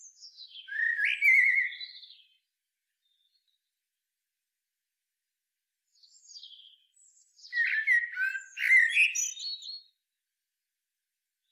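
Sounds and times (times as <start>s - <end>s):
Eurasian blackbird Turdus merula singing: 0.0s - 2.4s, 6.0s - 9.9s.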